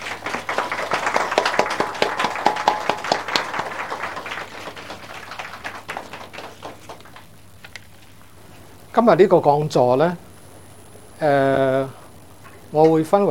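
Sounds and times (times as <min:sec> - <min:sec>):
audience applause welcoming a lecturer: 0:00.0 - 0:07.8
speech: 0:09.0 - 0:10.2, 0:11.2 - 0:12.0, 0:12.7 - 0:13.2.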